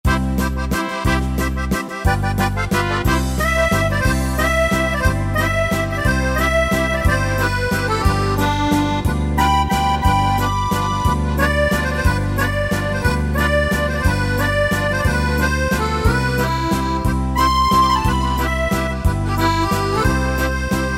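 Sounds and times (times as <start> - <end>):
waltz style on an arranger keyboard: 0.0 - 20.9.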